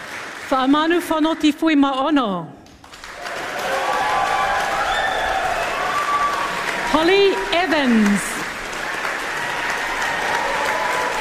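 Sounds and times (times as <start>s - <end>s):
audience applause for semi-finalists returning to a stage: 0.0s - 1.7s, 2.6s - 11.1s
speech: 0.5s - 2.6s, 6.9s - 8.3s.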